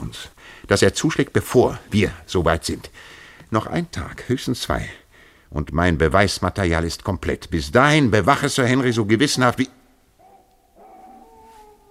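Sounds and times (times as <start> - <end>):
speech: 0.1 - 9.8
dog whimpering and whining: 10.2 - 11.8.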